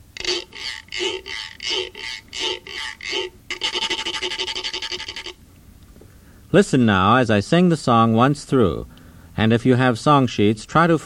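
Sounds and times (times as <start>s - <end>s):
Pima notched rasping stick being scraped: 0.2s - 5.4s
speech: 6.5s - 11.0s.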